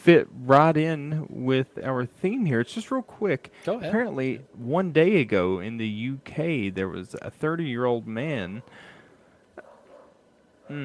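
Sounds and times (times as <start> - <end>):
speech: 0.0 - 8.9, 10.7 - 10.8
dog yelping or barking with a bending pitch: 9.6 - 10.2.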